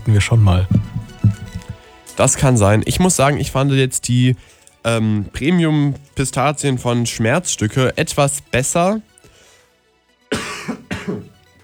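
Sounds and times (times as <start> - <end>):
speech: 0.1 - 1.0, 2.2 - 9.1
short harsh coughs: 10.3 - 11.4.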